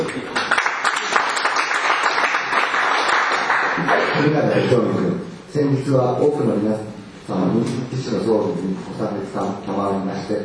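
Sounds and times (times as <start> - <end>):
room full of people clapping: 0.0 - 4.4
speech: 4.2 - 10.4.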